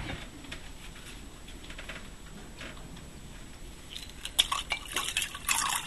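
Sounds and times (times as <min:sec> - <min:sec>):
water pouring into a glass: 0:04.0 - 0:05.8.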